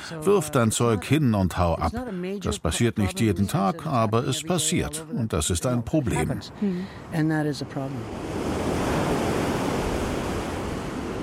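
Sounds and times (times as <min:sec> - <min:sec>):
speech: 0:00.1 - 0:08.5
waves washing against the sandy shore of Lake Ontario in Rouge National Park: 0:07.8 - 0:11.2.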